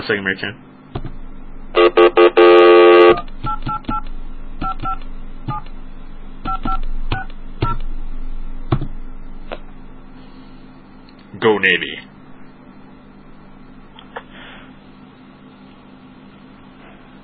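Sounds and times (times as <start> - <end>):
speech: 0.0 - 1.2, 11.4 - 12.1
faint hum: 0.0 - 17.2
long telephone tone: 1.8 - 3.3.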